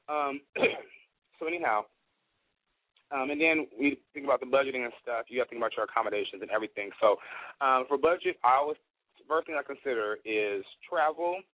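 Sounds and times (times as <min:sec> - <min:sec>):
speech: 0:00.1 - 0:00.8, 0:01.4 - 0:02.0, 0:03.1 - 0:11.5
person with a dry throat clearing throat: 0:00.2 - 0:01.0.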